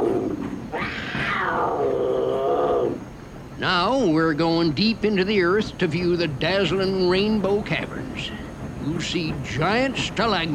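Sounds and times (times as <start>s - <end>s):
mountain lion roar: 0.0s - 3.0s
low rumble: 0.0s - 10.5s
speech: 3.6s - 10.5s.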